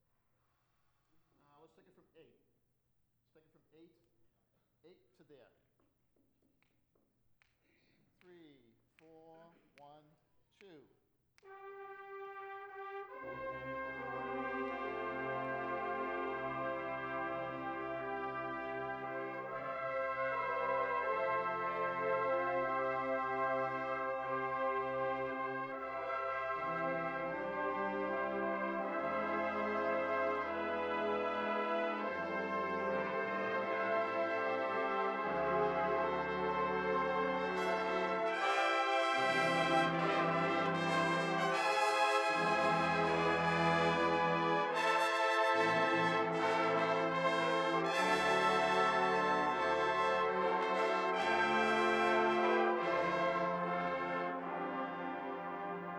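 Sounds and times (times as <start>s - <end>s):
brass ensemble practising: 11.4s - 55.9s.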